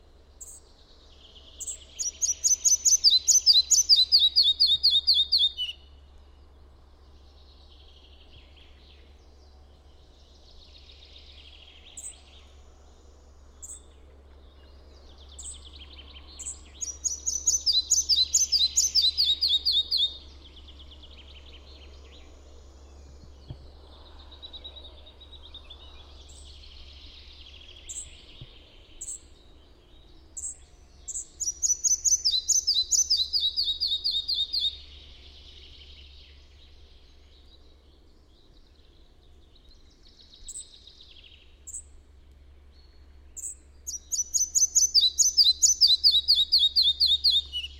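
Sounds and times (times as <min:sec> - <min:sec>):
red-breasted flycatcher Ficedula parva calling: 0:01.6 - 0:05.8, 0:16.3 - 0:20.2, 0:30.4 - 0:34.8, 0:43.4 - 0:47.7.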